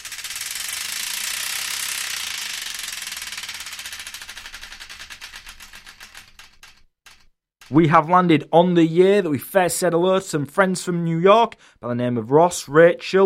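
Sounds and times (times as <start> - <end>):
game prize wheel spinning and clicking: 0.0 - 8.0
speech: 7.7 - 13.2.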